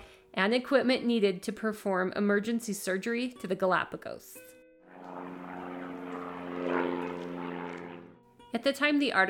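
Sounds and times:
speech: 0:00.4 - 0:04.5, 0:08.5 - 0:09.2
propeller plane engine droning overhead: 0:04.9 - 0:08.3.

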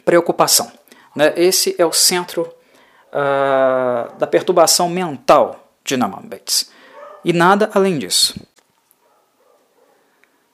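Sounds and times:
speech: 0:00.0 - 0:08.5
dogs barking outside: 0:06.9 - 0:07.3, 0:09.0 - 0:10.1.

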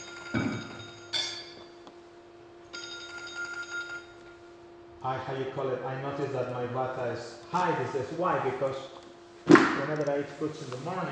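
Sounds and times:
mobile phone ringing with electronic bell-like tone: 0:00.0 - 0:01.1, 0:02.7 - 0:04.2
speech: 0:05.0 - 0:08.9, 0:09.8 - 0:11.1.

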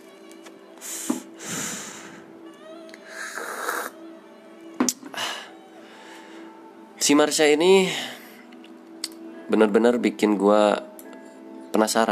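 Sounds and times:
slurping hot coffee: 0:03.2 - 0:03.9
speech: 0:07.1 - 0:08.1, 0:09.5 - 0:10.9, 0:11.8 - 0:12.1.

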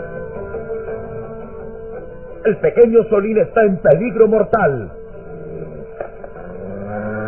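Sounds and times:
speech: 0:02.6 - 0:05.0
several wolves growling and snarling: 0:05.1 - 0:07.2.

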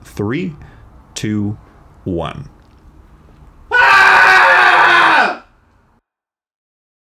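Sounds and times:
speech: 0:00.2 - 0:02.6
several voices screaming together: 0:03.6 - 0:05.5.

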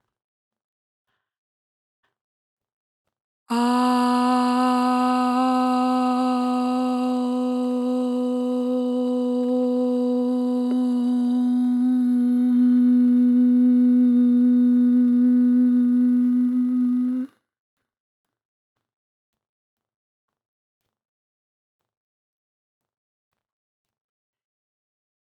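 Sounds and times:
speech: 0:03.5 - 0:03.9
single voice chanting a long Aum: 0:03.5 - 0:17.3.

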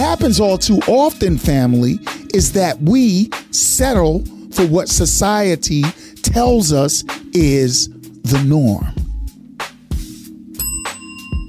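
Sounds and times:
speech: 0:00.1 - 0:09.0
hand bell ringing: 0:10.6 - 0:11.4.

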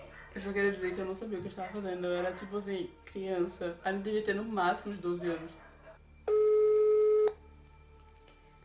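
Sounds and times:
speech: 0:00.5 - 0:05.6
telephone line tone while someone is being called: 0:06.3 - 0:07.4.

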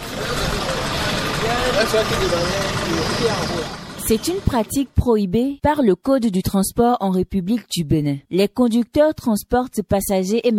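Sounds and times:
indistinct voices murmuring faintly: 0:00.0 - 0:04.6
car engine rumbling while parking: 0:00.0 - 0:04.8
road noise: 0:00.0 - 0:05.0
speech: 0:01.8 - 0:10.5.

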